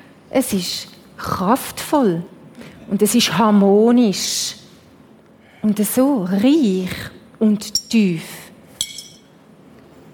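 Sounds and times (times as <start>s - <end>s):
speech: 0.3s - 4.6s, 5.6s - 8.4s
glasses clinking in a toast: 8.8s - 9.3s.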